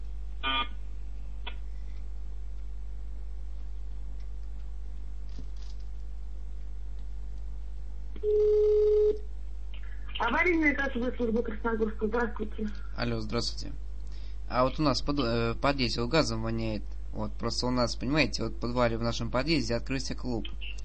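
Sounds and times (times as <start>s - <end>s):
steady low hum: 0.0s - 20.8s
speech: 8.2s - 8.6s, 10.4s - 13.8s, 14.5s - 20.8s
telephone connecting tone on a call to an emergency gas service: 8.2s - 9.3s.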